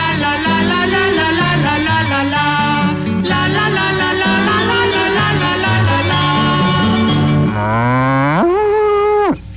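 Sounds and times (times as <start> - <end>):
bright rhythmic music with steady tones: 0.0 - 7.8
cow mooing: 4.4 - 9.4.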